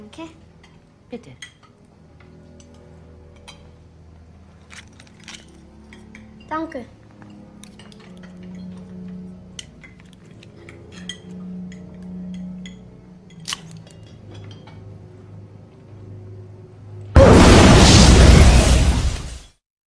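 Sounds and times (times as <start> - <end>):
speech: 0.1 - 0.5, 1.1 - 1.6, 6.5 - 7.0
cutlery and dishes clinking: 1.4 - 1.8, 4.6 - 6.6, 7.2 - 14.9
hand grenade blast under a dining table: 17.2 - 19.5.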